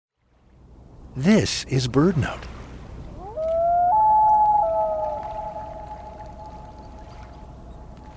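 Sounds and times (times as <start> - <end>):
faint hiss: 0.2 - 8.1
speech: 1.2 - 2.5
common loon wailing call: 3.2 - 7.4.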